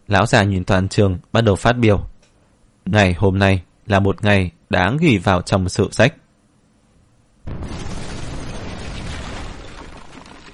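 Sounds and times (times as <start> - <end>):
speech: 0.1 - 2.1, 2.9 - 6.2
large wooden door shattering with splinters flying: 7.5 - 10.5.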